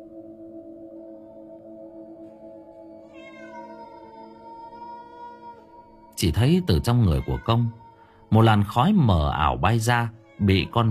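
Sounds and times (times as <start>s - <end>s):
steady droning tone: 0.0s - 10.8s
black cat meowing: 3.1s - 10.8s
speech: 6.2s - 10.8s.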